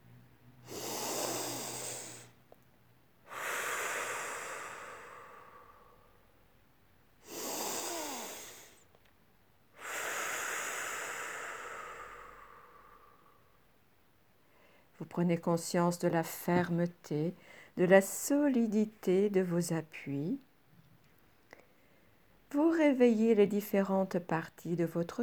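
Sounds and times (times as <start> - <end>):
slow deep breathing during a guided relaxation exercise: 0.6 - 2.4, 3.3 - 6.4, 7.2 - 8.9, 9.8 - 13.6
speech: 15.1 - 20.5, 22.5 - 25.2.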